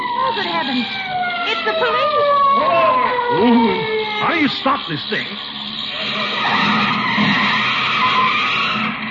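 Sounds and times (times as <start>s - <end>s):
speech: 0.3s - 5.7s
car braking hard with tires skidding: 2.6s - 9.1s.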